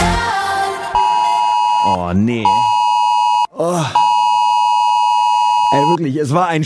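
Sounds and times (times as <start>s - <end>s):
loud steady electronic beep from a mobile phone: 1.0s - 6.0s
speech: 2.1s - 2.6s, 3.6s - 4.0s, 5.7s - 6.6s
short groaning vocal sound: 3.6s - 4.0s.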